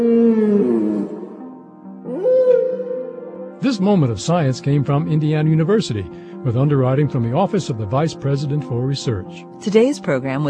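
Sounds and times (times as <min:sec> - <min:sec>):
speech: 0:00.0 - 0:00.2, 0:03.6 - 0:10.4
sperm whale song: 0:00.0 - 0:03.6.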